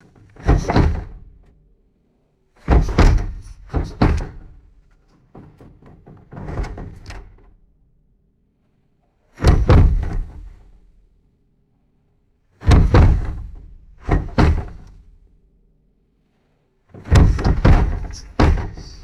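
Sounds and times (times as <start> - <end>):
wooden desk bumping against a door: 0.2 - 1.4, 2.7 - 4.7, 5.3 - 7.5, 9.4 - 10.7, 12.6 - 15.2, 17.0 - 19.0.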